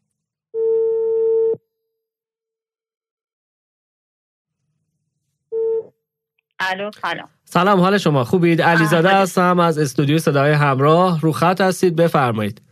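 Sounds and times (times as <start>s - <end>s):
telephone ringing tone as a call is placed: 0.6s - 1.6s
speech: 6.7s - 12.6s.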